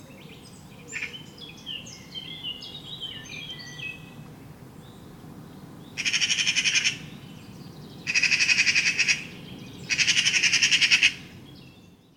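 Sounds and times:
smaller birds twittering: 0:00.0 - 0:12.1
Eurasian magpie Pica pica chattering: 0:08.1 - 0:09.3, 0:09.9 - 0:11.2.

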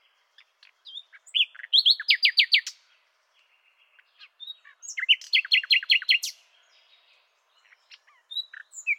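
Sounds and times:
common nightingale Luscinia megarhynchos song: 0:00.0 - 0:08.9.

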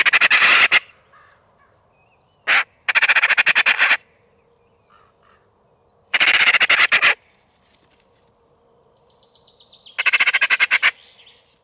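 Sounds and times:
Eurasian magpie Pica pica rattling chatter: 0:00.0 - 0:00.8, 0:02.5 - 0:04.0, 0:06.2 - 0:07.2, 0:10.0 - 0:11.0.

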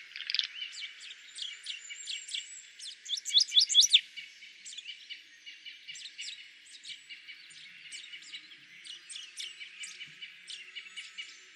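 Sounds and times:
common chaffinch Fringilla coelebs chirping: 0:00.0 - 0:01.6, 0:03.0 - 0:04.0.

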